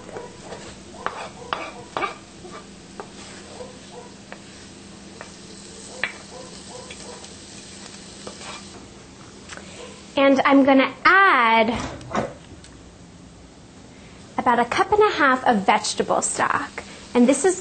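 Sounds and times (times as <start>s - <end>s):
sautéed onions, shallot and garlic sizzling in a hot pan: 0.0s - 10.6s, 14.4s - 17.5s
utensil scraping a pan while stirring: 0.2s - 3.7s, 8.2s - 8.8s
speech: 10.3s - 11.0s, 11.6s - 12.2s, 14.5s - 17.5s.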